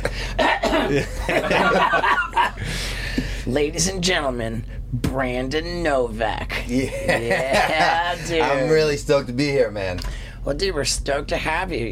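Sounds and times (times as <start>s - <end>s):
man coughing: 0.0s - 1.4s
man chuckling: 0.0s - 2.8s, 6.6s - 8.4s
speech: 0.9s - 11.9s.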